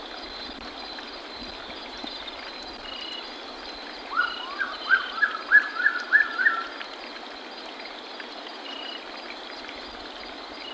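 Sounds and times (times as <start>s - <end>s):
Lyre-tailed nightjar uttering short slurred notes in Ecuador: 4.1s - 6.8s.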